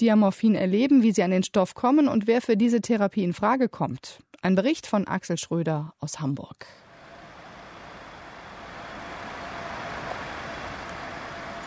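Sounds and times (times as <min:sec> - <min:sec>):
speech: 0:00.0 - 0:06.8
engines idling and rumbling at a busy intersection: 0:06.9 - 0:11.6
morning commuter traffic roar at a busy intersection: 0:06.9 - 0:11.6.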